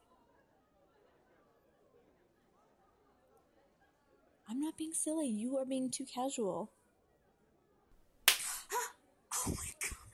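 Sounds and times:
speech: 4.5 - 6.8
sharp slap on the buttocks: 8.3 - 8.6.

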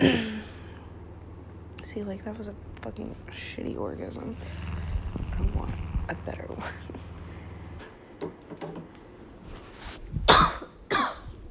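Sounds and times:
speech: 1.9 - 4.8, 5.4 - 7.1, 8.5 - 9.0
coughs away from the phone: 10.3 - 11.3.

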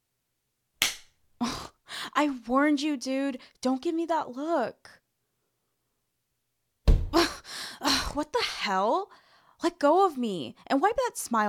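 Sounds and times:
sharp slaps to the face: 0.8 - 1.1
speech: 2.2 - 5.0, 8.2 - 11.4
body slamming against a wall: 6.9 - 7.2
breathy strained gasp: 7.1 - 7.9.

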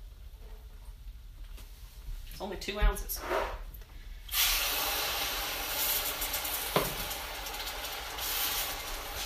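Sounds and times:
speech: 2.4 - 3.6
quarter cup of water boiling violently in a hot pan: 4.3 - 9.2.

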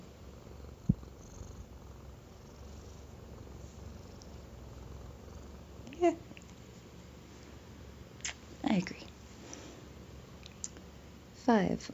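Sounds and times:
kitten purring: 0.0 - 6.6
speech: 8.8 - 9.0, 11.5 - 11.9.

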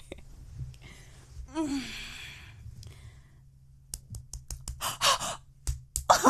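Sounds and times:
breathy sighs: 0.8 - 3.3
sharp hand slaps on the clitoris: 5.7 - 6.1.

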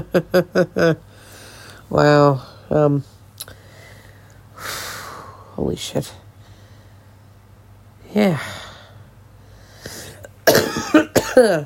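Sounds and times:
speech: 0.0 - 1.1, 1.9 - 3.1, 5.6 - 6.2, 8.1 - 8.6, 10.9 - 11.6
person breathing softly: 1.0 - 5.6, 6.3 - 7.4, 8.2 - 10.3
person coughing harshly: 10.1 - 11.6.

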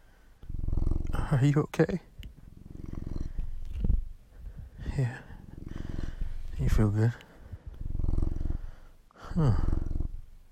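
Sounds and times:
cat purring: 0.0 - 10.4
speech: 1.3 - 2.1, 6.8 - 7.3, 9.4 - 9.7.

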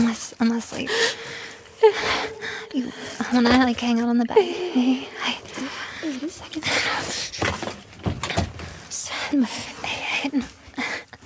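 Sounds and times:
speech: 0.1 - 7.7, 9.3 - 10.5
sharp knocks and clunks of a door lock being worked: 7.4 - 8.7
door shutting: 7.4 - 8.8.

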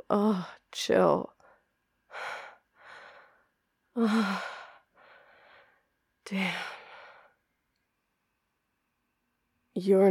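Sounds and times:
speech: 0.1 - 1.4, 4.0 - 4.6, 6.3 - 6.7, 9.8 - 10.0
heavy breathing of someone catching their breath: 2.1 - 5.8.

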